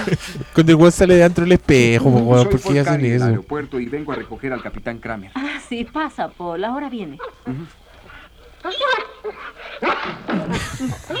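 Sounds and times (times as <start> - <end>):
laughter: 0.0 - 7.9, 8.6 - 11.1
speech: 0.1 - 7.8, 8.6 - 11.1
dog growling and barking: 7.2 - 11.1.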